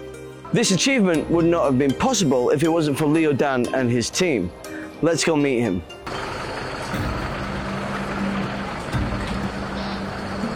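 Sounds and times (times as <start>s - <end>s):
speech: 0.5s - 6.3s
tourist bus engine droning from inside: 6.0s - 10.5s.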